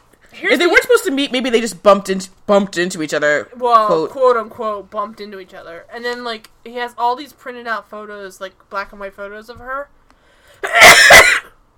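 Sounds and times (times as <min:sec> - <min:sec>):
speech: 0:00.4 - 0:10.0, 0:10.6 - 0:11.3
single loud sneeze: 0:10.6 - 0:11.6.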